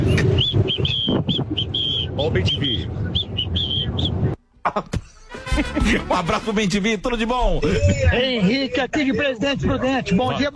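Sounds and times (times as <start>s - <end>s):
person whistling short high chirping notes imitating a songbird: 0.0s - 4.4s
speech: 2.2s - 3.1s, 4.7s - 5.0s, 5.6s - 10.5s
laughter: 4.7s - 6.5s, 7.4s - 10.5s.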